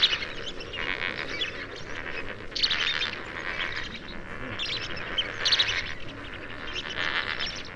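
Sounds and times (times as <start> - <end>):
Lesser flamingos calling together: 0.0 - 7.7.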